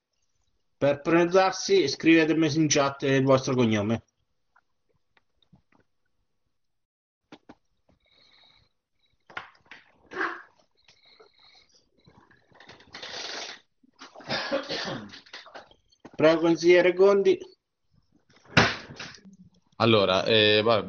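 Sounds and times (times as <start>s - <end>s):
speech: 0.8s - 4.1s, 16.4s - 17.5s, 19.8s - 20.8s
municipal assessor sneezing during a council discussion: 13.0s - 15.5s.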